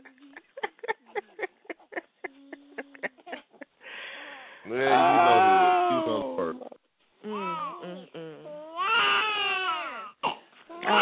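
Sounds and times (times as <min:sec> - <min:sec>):
speech: 0:04.7 - 0:05.4
newborn baby crying: 0:04.8 - 0:06.3, 0:08.6 - 0:10.2, 0:10.8 - 0:11.0.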